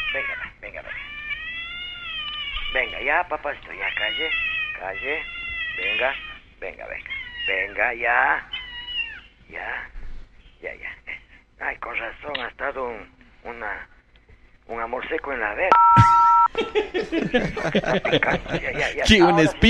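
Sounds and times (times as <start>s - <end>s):
cat meowing in drawn-out wailing cries: 0.0s - 3.1s, 3.8s - 6.4s, 7.1s - 7.8s, 8.5s - 9.2s
speech: 0.2s - 1.1s, 2.7s - 8.5s, 9.5s - 10.0s, 10.6s - 11.0s, 11.6s - 13.9s, 14.7s - 19.6s
laughter: 16.0s - 19.6s.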